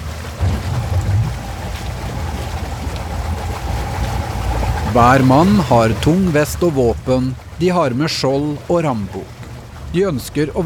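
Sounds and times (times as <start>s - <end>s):
wind noise: 0.0s - 7.6s
overloaded boat engine rumble backing out through water: 0.0s - 10.6s
water splashing: 0.0s - 10.6s
speech: 5.0s - 10.6s.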